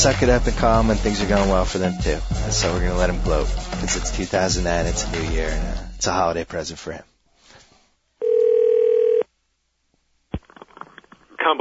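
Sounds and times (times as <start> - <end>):
speech: 0.0 - 7.1
steady electronic telephone ring tone: 8.2 - 9.3.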